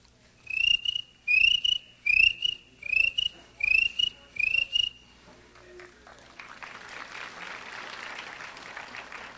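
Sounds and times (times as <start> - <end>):
cricket chirps: 0.5 - 5.0.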